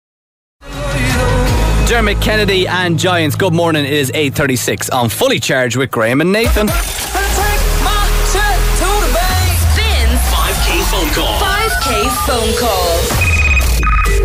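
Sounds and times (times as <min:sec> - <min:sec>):
speech: 0:01.9 - 0:07.1, 0:12.3 - 0:13.2
layered electronic sounds: 0:06.5 - 0:14.2
jingle-like bright warbling tones and ringing chimes: 0:10.0 - 0:14.2.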